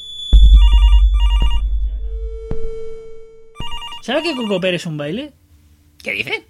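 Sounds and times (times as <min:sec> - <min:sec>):
steady lingering tone: 0:00.0 - 0:03.5
low rumbling background: 0:00.0 - 0:03.6
telephone ringing: 0:00.6 - 0:01.6, 0:03.6 - 0:04.7
speech: 0:04.0 - 0:05.4, 0:06.0 - 0:06.4.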